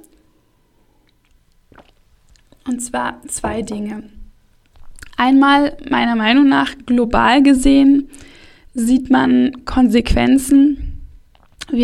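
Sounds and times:
sip of water: 1.0s - 2.6s, 11.3s - 11.7s
slurp: 1.0s - 2.6s
speech: 2.6s - 4.2s, 5.2s - 10.8s.

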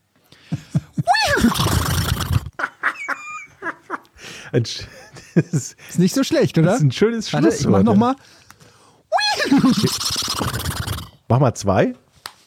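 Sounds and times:
laughter: 0.5s - 1.3s, 2.5s - 5.9s
person imitating horse neighing with their voice: 1.0s - 2.6s, 9.1s - 11.2s
speech: 4.5s - 8.4s, 9.5s - 10.6s, 11.3s - 12.0s.

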